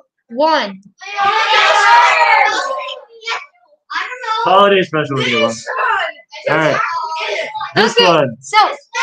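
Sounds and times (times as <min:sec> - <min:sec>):
speech: 0:00.3 - 0:03.4, 0:04.3 - 0:09.0
audience shouting out answers: 0:01.0 - 0:03.4, 0:04.5 - 0:08.0.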